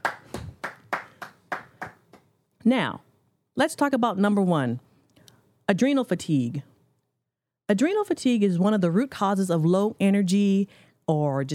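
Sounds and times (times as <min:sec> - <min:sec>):
sharp hand claps: 0:00.0 - 0:02.3
speech: 0:02.6 - 0:03.0, 0:03.6 - 0:04.9, 0:05.7 - 0:06.7, 0:07.7 - 0:11.5.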